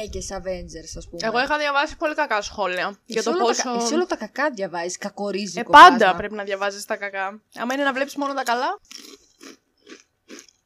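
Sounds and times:
speech: 0.0s - 10.4s
crunchy moist chewing at the microphone: 8.8s - 10.6s.

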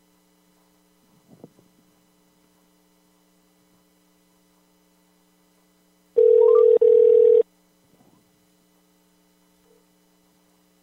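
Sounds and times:
faint electrical hum: 0.0s - 10.8s
telephone dial tone while redialing a dropped call: 6.2s - 7.4s.

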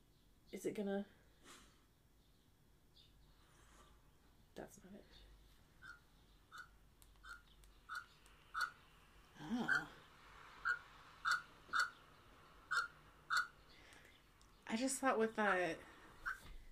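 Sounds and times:
speech: 0.5s - 1.6s, 4.6s - 5.2s, 9.4s - 10.0s, 14.7s - 15.9s
pelican croaking calls from a played recording: 5.8s - 8.8s, 9.6s - 10.0s, 10.6s - 12.0s, 12.7s - 13.6s.

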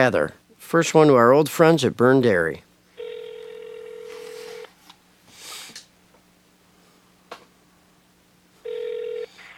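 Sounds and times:
speech: 0.0s - 2.7s
steady electronic telephone ring tone: 3.0s - 4.7s, 8.6s - 9.4s.

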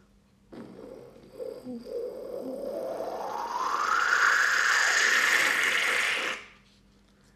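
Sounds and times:
person vocally imitating a stovetop espresso pot gurgling and hissing: 0.5s - 6.6s.

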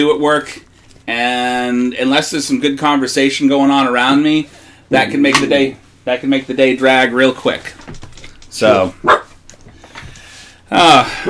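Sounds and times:
speech: 0.0s - 8.0s, 8.6s - 9.2s, 10.7s - 11.2s
faint noise: 0.0s - 11.2s
dog barking: 9.0s - 9.3s.

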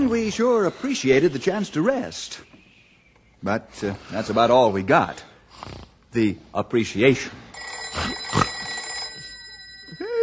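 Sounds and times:
speech: 0.0s - 2.6s, 3.4s - 8.3s
telephone bell ringing at a ranger headquarters: 7.5s - 10.2s.

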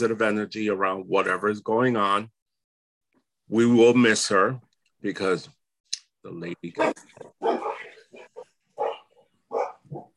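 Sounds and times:
speech: 0.0s - 2.4s, 3.5s - 5.6s, 6.2s - 8.3s
two big pit bull dogs barking: 6.8s - 10.1s.

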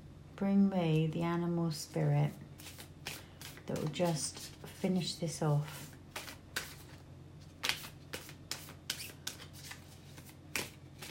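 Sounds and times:
speech: 0.4s - 2.8s, 3.7s - 5.9s
tarot cards being shuffled and drawn: 2.6s - 5.0s, 5.7s - 11.0s.

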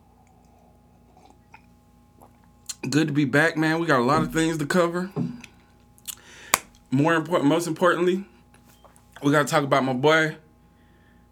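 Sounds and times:
low steady room hum: 0.0s - 11.2s
person sipping hot coffee: 0.2s - 2.8s
speech: 2.8s - 5.3s, 6.9s - 8.3s, 9.2s - 10.4s.

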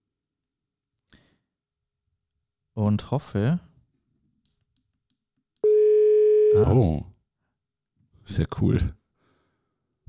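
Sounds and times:
speech: 2.8s - 3.7s, 6.5s - 7.1s, 8.2s - 9.0s
telephone ringing tone while placing a call: 5.6s - 6.7s.

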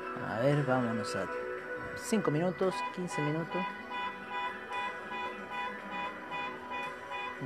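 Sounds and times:
speech: 0.2s - 1.4s, 2.0s - 3.8s
car alarm with piercing pulsing electronic tone: 2.7s - 7.4s.

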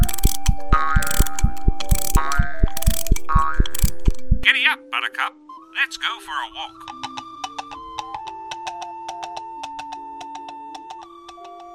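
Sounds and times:
clockwork toy pony ratchet clicks: 0.0s - 4.4s
whirring gears of a clockwork toy pony: 0.0s - 4.4s
speech: 5.0s - 7.0s.

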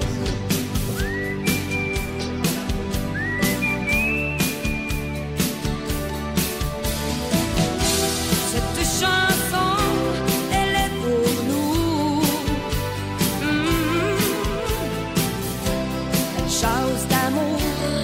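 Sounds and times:
loud busy band track with drums and bass: 0.0s - 17.5s
high thin whistled harmony: 0.7s - 6.0s.

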